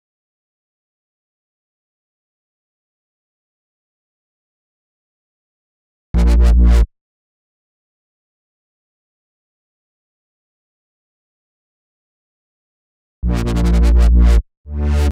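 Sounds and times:
complex electro synth bass in G: 6.2 - 6.9, 13.2 - 15.0.

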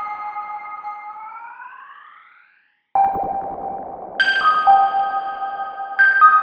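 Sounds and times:
airy synth loop: 3.0 - 6.3.

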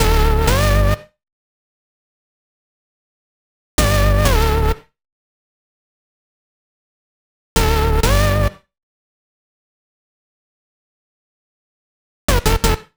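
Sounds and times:
D minor synth bass at 128 BPM: 0.0 - 1.0, 3.8 - 4.8, 7.8 - 8.5.

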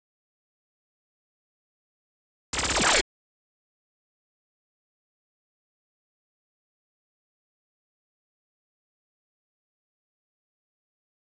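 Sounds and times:
complex electro synths: 2.6 - 3.0.

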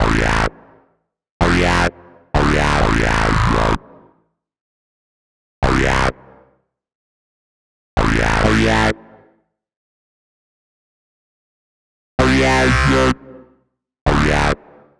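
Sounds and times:
Am bass: 0.0 - 0.8, 1.4 - 4.1, 5.6 - 6.5, 8.0 - 9.2, 12.2 - 13.5, 14.1 - 14.8.

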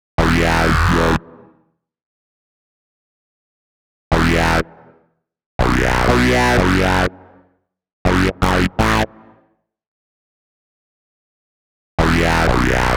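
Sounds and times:
bass in B minor: 0.2 - 1.5, 4.1 - 4.9, 5.6 - 7.3, 8.1 - 9.4, 12.0 - 12.9.

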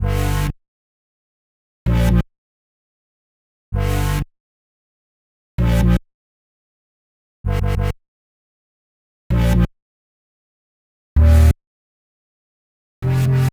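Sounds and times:
G bass at 129 bpm: 0.0 - 0.6, 1.8 - 2.3, 3.7 - 4.3, 5.6 - 6.0, 7.4 - 8.0, 9.3 - 9.7, 11.2 - 11.6, 13.0 - 13.5.

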